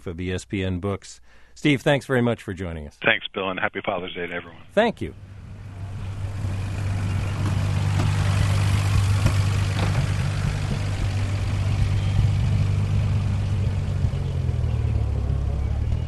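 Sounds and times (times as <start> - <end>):
speech: 0.0 - 5.3
1936 Bentley Le Mans Special vintage car engine idling: 5.0 - 16.0.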